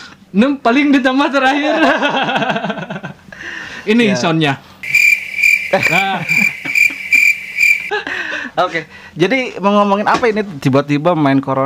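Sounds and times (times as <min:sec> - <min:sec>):
speech: 0:00.3 - 0:02.8, 0:03.8 - 0:04.7, 0:05.7 - 0:06.5, 0:08.6 - 0:11.6
laughter: 0:01.6 - 0:03.2, 0:05.8 - 0:08.5
cricket chirping sound effect: 0:04.8 - 0:07.9.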